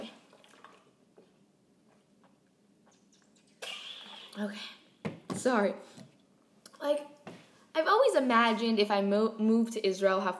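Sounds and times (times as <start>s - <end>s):
person taking a small sip of water and swallowing: 0.2s - 4.9s
speech: 4.4s - 4.8s, 5.4s - 6.0s, 6.8s - 7.2s, 7.8s - 10.3s.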